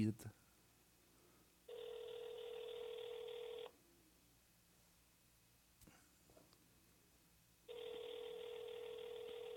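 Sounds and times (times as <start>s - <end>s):
speech: 0.0s - 0.4s
ringback tones on a phone line: 1.7s - 3.7s, 7.7s - 9.5s.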